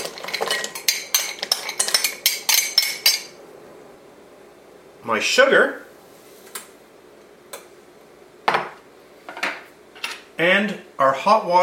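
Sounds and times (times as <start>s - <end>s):
metal utensil clinking against a glass heat-proof bowl over simmering water: 0.0s - 3.3s
speech: 5.0s - 5.8s, 10.4s - 11.6s.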